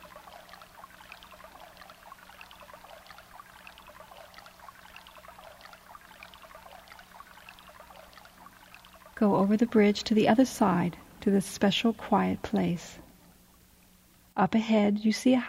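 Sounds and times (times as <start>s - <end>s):
small clear brook babbling over stones beneath a small bridge on a meadow path: 0.0s - 13.0s
speech: 9.2s - 13.0s, 14.4s - 15.4s.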